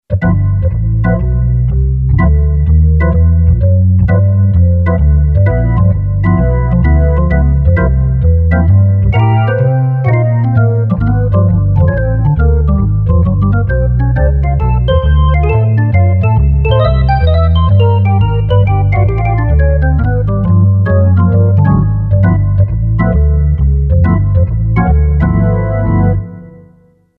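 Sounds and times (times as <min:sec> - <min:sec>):
jazz organ voice on a Yamaha PSR-550 keyboard: 0:00.1 - 0:26.9.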